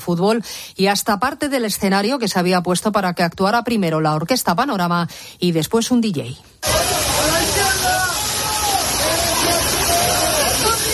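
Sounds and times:
speech: 0.0s - 7.0s
heavy rain and hail pounding down in a storm: 6.6s - 10.9s.

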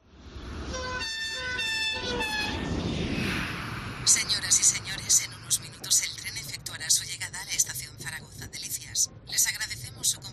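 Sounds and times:
train travelling from Madrid to Zaragoza rumbling: 0.2s - 10.3s
train horn blasts: 0.7s - 2.7s
speech: 4.1s - 4.6s.

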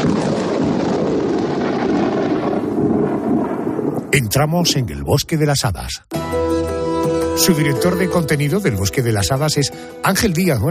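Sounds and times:
thunderstorm with rolling thunder: 0.0s - 4.7s
speech: 4.2s - 6.2s, 7.4s - 10.6s.

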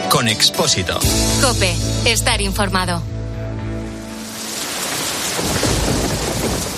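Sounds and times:
speech: 0.2s - 3.2s
heavy rain: 3.9s - 6.7s
deep roll of thunder: 4.4s - 6.7s.

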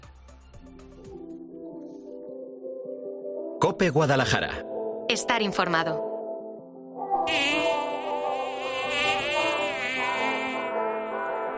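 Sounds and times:
speech: 3.7s - 6.1s
dense insect buzz: 7.3s - 11.5s.

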